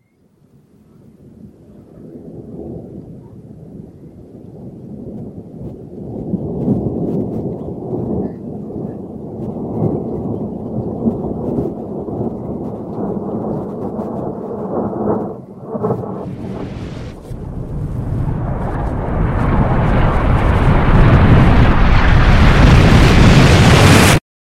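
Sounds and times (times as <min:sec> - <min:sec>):
reversed explosion: 0:09.4 - 0:24.2.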